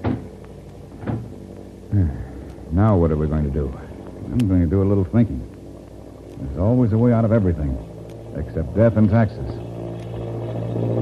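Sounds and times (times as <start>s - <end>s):
wooden door pushed shut with a solid thud: 0.0s - 0.3s, 1.0s - 1.4s
speech: 2.7s - 5.5s, 6.5s - 9.6s, 10.8s - 11.0s.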